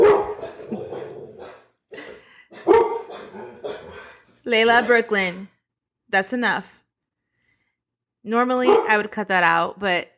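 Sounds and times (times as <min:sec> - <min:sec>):
dog barking: 0:00.0 - 0:01.7, 0:02.5 - 0:05.0, 0:08.6 - 0:09.0
speech: 0:04.5 - 0:05.5, 0:06.1 - 0:06.8, 0:08.2 - 0:10.1.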